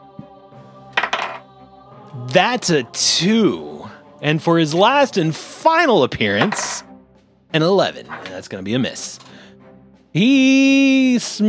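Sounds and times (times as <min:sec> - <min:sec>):
dice clattering across a hard tabletop during a tabletop game: 0:01.0 - 0:01.4, 0:06.4 - 0:06.9
speech: 0:02.1 - 0:06.9, 0:07.5 - 0:09.3, 0:10.1 - 0:11.4.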